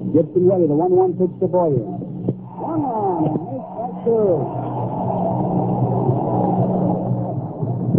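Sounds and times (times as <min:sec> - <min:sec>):
speech: 0:00.1 - 0:02.0, 0:04.1 - 0:04.6
packed ballpark crowd at a baseball game roaring: 0:02.5 - 0:07.9.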